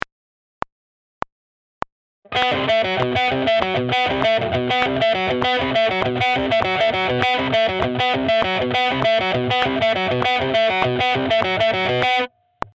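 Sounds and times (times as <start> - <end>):
metal rhythm guitar: 2.3 - 12.3.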